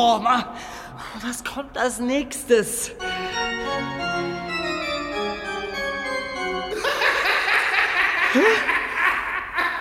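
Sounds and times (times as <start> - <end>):
speech: 0.0 - 4.3, 8.4 - 8.7
organ pipe wheezy tone mimicking a laugh: 3.0 - 7.6
laughter: 6.7 - 9.8.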